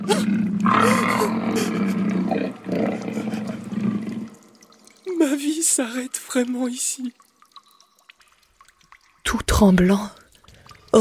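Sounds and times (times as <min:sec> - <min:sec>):
fierce lion roaring at its den: 0:00.0 - 0:04.4
speech: 0:05.8 - 0:07.2, 0:09.6 - 0:10.2.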